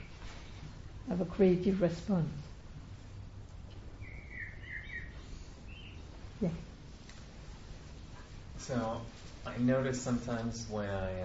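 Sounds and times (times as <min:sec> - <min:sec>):
low hum: 0:00.0 - 0:11.2
speech: 0:01.1 - 0:02.5, 0:06.4 - 0:06.7, 0:08.7 - 0:11.2
faint birds chirping outdoors: 0:02.6 - 0:09.6.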